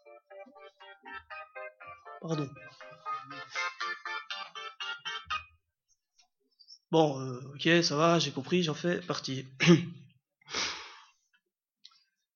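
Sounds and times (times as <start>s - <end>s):
mobile phone ringtone with fast electronic beeping melody: 0.0s - 5.5s
speech: 2.2s - 2.8s, 6.9s - 10.0s.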